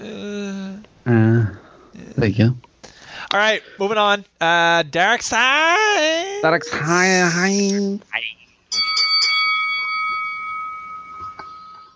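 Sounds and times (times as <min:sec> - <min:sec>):
speech: 0:02.2 - 0:02.7, 0:03.3 - 0:08.4
mindfulness bell chimes: 0:08.7 - 0:11.9.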